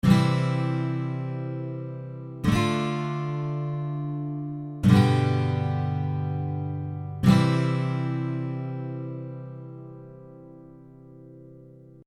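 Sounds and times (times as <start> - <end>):
guitar playing C D G C chords: 0.0 - 12.0.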